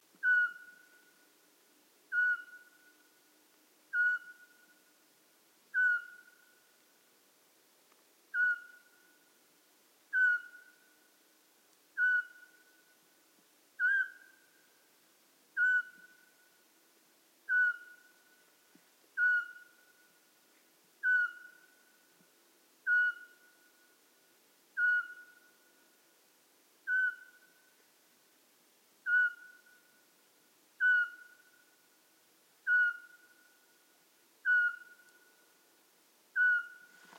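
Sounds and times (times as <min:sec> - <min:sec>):
Eurasian pygmy owl Glaucidium passerinum calling: 0:00.2 - 0:01.2, 0:02.1 - 0:03.0, 0:03.9 - 0:04.8, 0:05.7 - 0:06.6, 0:08.3 - 0:09.2, 0:10.1 - 0:10.9, 0:12.0 - 0:12.8, 0:13.8 - 0:14.6, 0:15.6 - 0:16.5, 0:17.5 - 0:18.4, 0:19.2 - 0:20.1, 0:21.0 - 0:22.0, 0:22.8 - 0:23.9, 0:24.8 - 0:25.7, 0:26.8 - 0:27.7, 0:29.0 - 0:30.0, 0:30.8 - 0:31.7, 0:32.6 - 0:33.7, 0:34.4 - 0:35.5, 0:36.3 - 0:37.1.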